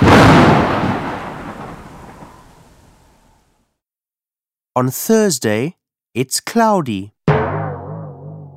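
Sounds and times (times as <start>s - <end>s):
loud deep thunder rumbling in a thunderstorm: 0.0s - 3.4s
speech: 4.8s - 7.2s.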